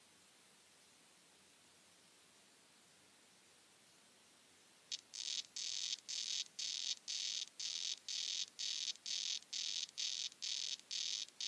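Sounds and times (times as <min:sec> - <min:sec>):
Red-backed poison frog Ranitomeya reticulata calling: 0:04.9 - 0:11.4.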